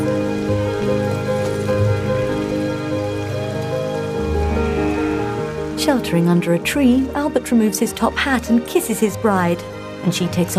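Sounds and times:
sustained low tones: 0.0 - 7.4
steady rain falling at Windsor: 0.0 - 10.5
speech: 5.8 - 10.5.

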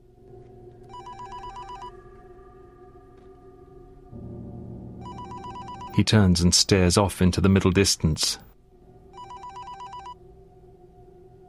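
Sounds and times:
mobile phone on a desk blotter ringing in electronic bursts: 0.9 - 2.0, 5.0 - 6.0, 9.1 - 10.2
speech: 6.0 - 8.5.

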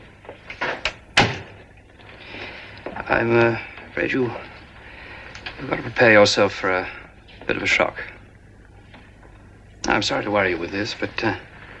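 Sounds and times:
door shutting with a solid heavy thud: 0.6 - 1.6
speech: 3.1 - 4.6, 5.6 - 8.1, 9.9 - 11.5.

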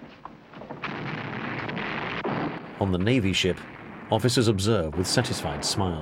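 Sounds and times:
cannons exploding on hillsides: 0.0 - 5.9
dense continuous barrage of gunfire: 0.0 - 5.9
speech: 2.8 - 5.9.

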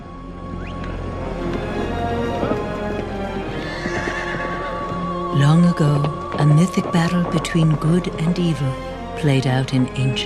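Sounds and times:
busy ambient background: 0.0 - 10.2
horse hooves clip-clopping: 0.6 - 9.1
horse whinny: 3.5 - 4.8
speech: 5.4 - 10.2.

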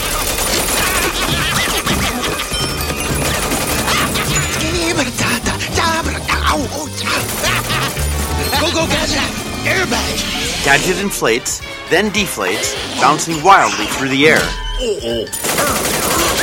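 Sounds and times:
machine gun fire from a cartoon robot's arms: 0.0 - 1.9, 2.8 - 5.0, 7.0 - 8.8, 15.4 - 16.4
laughter: 0.0 - 9.8
loud music: 2.8 - 13.6
speech: 10.7 - 15.9.

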